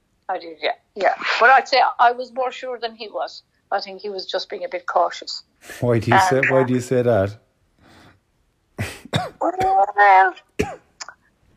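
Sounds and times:
speech: 0.3 - 7.4, 9.1 - 10.8
voiced throat clearing: 8.8 - 9.8
throaty coughs: 8.8 - 9.9, 10.6 - 11.0.

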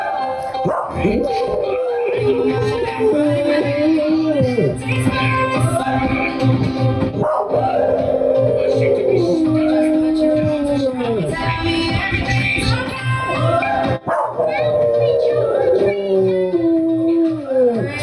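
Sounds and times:
female West Highland Terrier howling and yipping along to music: 0.0 - 4.6, 7.2 - 11.2, 13.4 - 18.0
person singing: 0.0 - 18.0.

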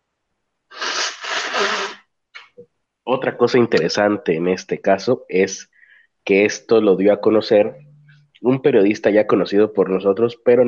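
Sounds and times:
person blowing nose in a long rough honk: 0.7 - 2.0
quick short sniffs: 0.7 - 2.0
speech: 3.1 - 10.6.

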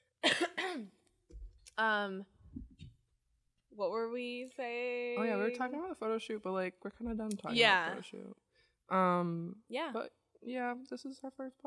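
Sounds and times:
sharp coughs: 0.2 - 0.9
speech: 0.8 - 1.0, 1.8 - 2.4, 3.8 - 11.6.

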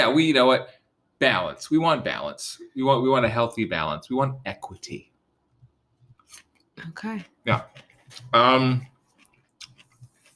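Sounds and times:
speech: 0.0 - 5.1, 6.3 - 8.9
person chewing food: 7.2 - 10.3
wet mouth clicks and smacks: 9.1 - 10.3.

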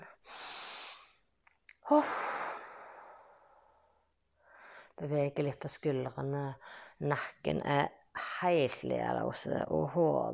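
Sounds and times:
long deep breath drawn in close to the microphone: 0.2 - 1.2, 1.9 - 4.9
speech: 1.9 - 2.3, 5.0 - 10.3.

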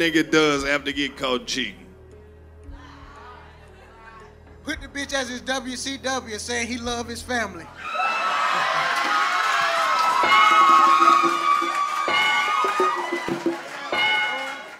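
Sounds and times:
speech: 0.0 - 1.8, 4.7 - 8.8
live crowd cheering and shouting: 7.8 - 14.7.

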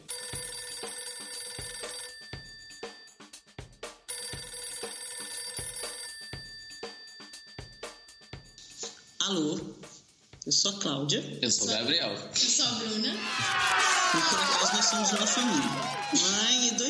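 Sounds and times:
phone ringing on an outgoing call, melodic repeating electronic tune: 0.0 - 8.6
speech: 9.2 - 9.8, 10.4 - 16.8
laughter: 13.2 - 16.6.

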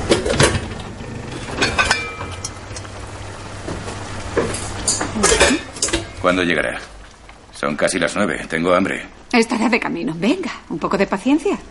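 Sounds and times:
dishes and cutlery clinking as dinner is prepared in a kitchen: 1.5 - 2.9, 4.4 - 6.2
speech: 6.2 - 7.0, 7.6 - 11.7.

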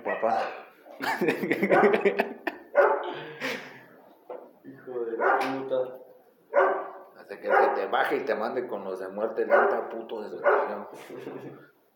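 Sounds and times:
dog barking loudly and yapping: 0.0 - 0.6, 1.6 - 2.1, 2.7 - 3.1, 5.2 - 5.7, 6.5 - 7.9, 9.4 - 10.9
whimpery drawn-out dog barks: 0.0 - 0.6, 6.6 - 7.8, 9.5 - 10.7
speech: 0.2 - 2.4, 7.4 - 11.7
laughter: 1.0 - 3.9.

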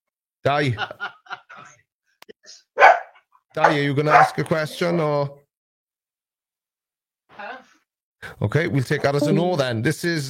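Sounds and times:
speech: 0.4 - 1.1, 3.6 - 5.4, 8.2 - 10.2
laughter: 0.6 - 1.8
dog barking: 2.8 - 4.4.

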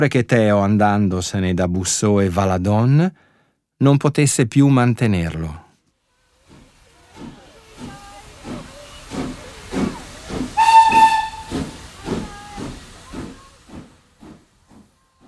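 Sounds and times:
speech: 0.0 - 5.6
steam train chugging with rhythmic hissing puffs: 6.2 - 15.2
short shrill steam train whistle blast: 8.7 - 13.5.

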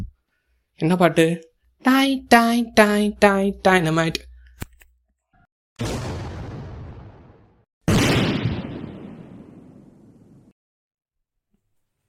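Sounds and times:
speech: 0.8 - 4.3
dynamite explosions with long rumbling decay: 5.8 - 10.5.

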